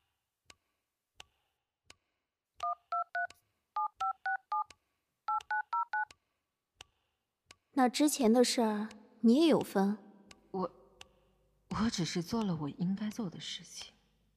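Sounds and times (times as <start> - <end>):
telephone keypad dialing tones: 2.6 - 4.7, 5.3 - 6.1
speech: 7.8 - 10.0, 11.8 - 14.0.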